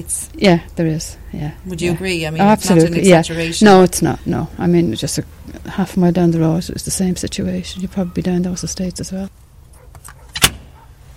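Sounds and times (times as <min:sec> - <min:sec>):
speech: 0:00.0 - 0:09.4
door letterbox flap snapping shut: 0:10.0 - 0:10.7.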